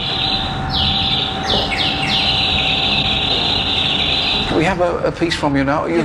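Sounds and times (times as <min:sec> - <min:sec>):
high bird-like whistles sweeping downward: 0:00.0 - 0:04.7
steady sustained tone: 0:00.0 - 0:05.5
speech: 0:04.8 - 0:06.0.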